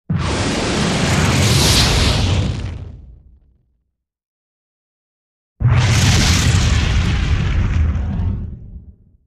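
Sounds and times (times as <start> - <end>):
space fireball: 0.1 - 3.6, 5.6 - 9.2.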